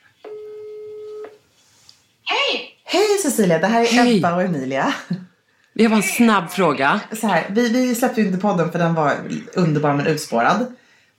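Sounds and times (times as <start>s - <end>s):
ringback tone from an outgoing telephone call: 0.3s - 1.2s
speech: 2.5s - 5.2s, 5.8s - 10.8s.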